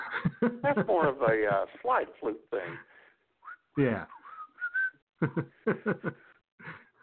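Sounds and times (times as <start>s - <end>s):
laughter: 0.0s - 1.8s, 5.2s - 6.4s
speech: 0.4s - 2.9s, 3.8s - 4.2s, 5.2s - 6.8s
person whistling a short choppy tune: 3.4s - 5.0s.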